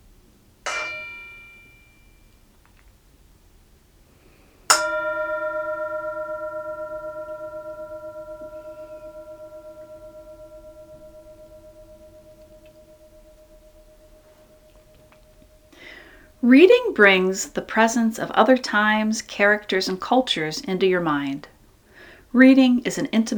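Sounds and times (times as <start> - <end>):
bell being struck and ringing: 0.7 - 2.3, 4.7 - 17.2
speech: 16.4 - 21.5, 22.3 - 23.3.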